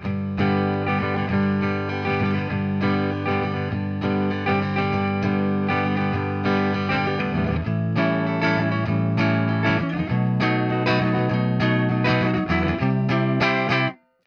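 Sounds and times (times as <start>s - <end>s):
clean Fender Jazzmaster Classic Player electric guitar chords: 0.0s - 14.0s.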